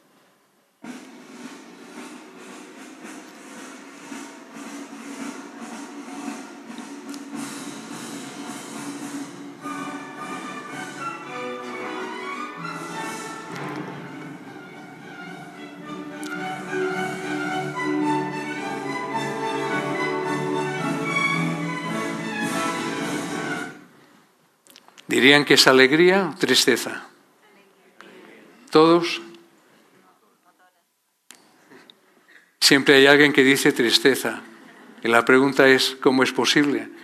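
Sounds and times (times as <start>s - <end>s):
bright cheerful instrumental music with percussion: 0.8s - 23.8s
speech: 25.2s - 27.1s, 28.8s - 29.3s, 32.7s - 37.0s.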